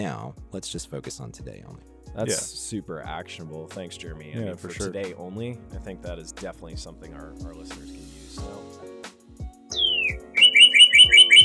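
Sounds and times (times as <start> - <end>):
speech: 0.0 - 8.6
bird chirping in a podcast booth: 9.7 - 11.4.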